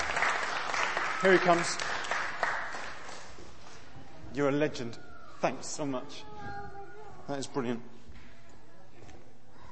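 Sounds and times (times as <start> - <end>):
crowd clapping: 0.0 - 3.6
speech: 1.2 - 2.0, 4.4 - 6.3, 7.3 - 7.9.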